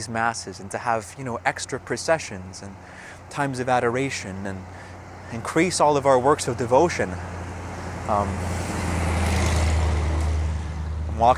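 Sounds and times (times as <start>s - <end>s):
speech: 0.0s - 7.4s, 8.1s - 8.8s, 11.2s - 11.3s
huge truck passing on a street: 2.7s - 11.3s.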